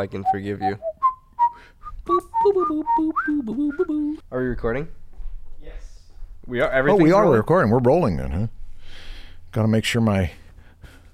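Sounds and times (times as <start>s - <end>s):
speech: 0.0s - 0.9s, 2.4s - 5.0s, 6.5s - 10.4s
person whistling a short wavering melody: 0.0s - 4.2s.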